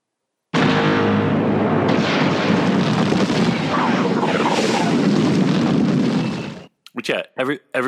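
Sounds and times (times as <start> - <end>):
seismic charge explosion: 0.6 - 6.7
speech: 7.1 - 7.8.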